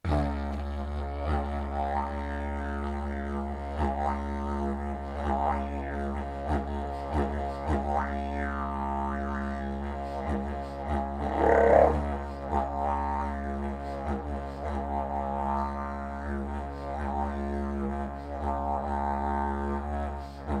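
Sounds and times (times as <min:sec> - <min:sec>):
didgeridoo: 0:00.0 - 0:20.5.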